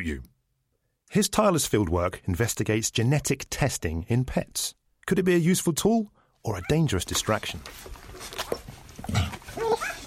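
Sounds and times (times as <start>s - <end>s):
speech: 0.0s - 0.3s, 1.1s - 9.3s
soft shuffling: 6.9s - 10.0s
newborn golden retriever puppies whimpering and squeaking: 8.5s - 10.0s.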